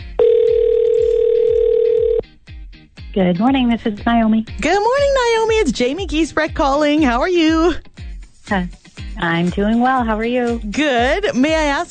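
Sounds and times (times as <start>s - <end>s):
electronic telephone ring tone down a phone line: 0.2s - 2.2s
speech: 3.2s - 7.9s, 8.5s - 11.8s.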